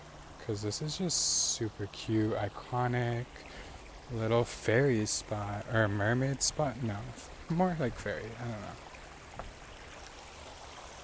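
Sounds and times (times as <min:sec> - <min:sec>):
steady rushing river water: 0:00.0 - 0:11.0
speech: 0:00.5 - 0:08.9.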